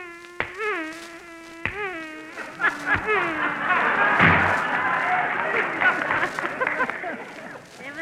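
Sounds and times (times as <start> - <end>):
sharp slaps of a man swatting flies: 0.0 - 7.5
wavering droning fly buzz: 0.0 - 8.0
audience laughter: 2.4 - 8.0
audience applause: 3.4 - 7.6.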